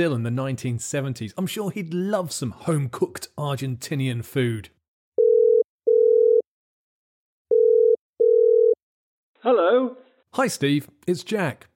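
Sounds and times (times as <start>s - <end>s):
speech: 0.0s - 4.8s, 9.4s - 11.7s
telephone ringback tone: 5.2s - 6.4s, 7.5s - 8.8s.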